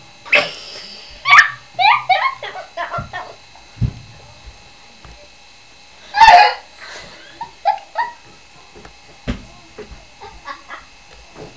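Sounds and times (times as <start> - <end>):
person giggling: 1.8 - 3.4, 6.2 - 8.4, 10.2 - 10.9.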